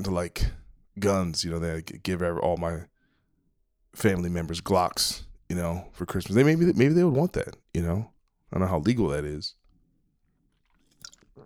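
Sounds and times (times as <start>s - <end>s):
speech: 0.0s - 2.9s, 3.9s - 9.6s
sipping Red Bull energy drink, slurping and swallowing: 10.4s - 11.4s.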